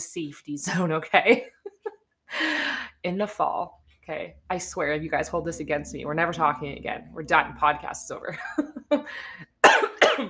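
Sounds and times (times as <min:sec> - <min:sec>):
speech: 0:00.0 - 0:09.8
person coughing harshly: 0:09.6 - 0:10.2.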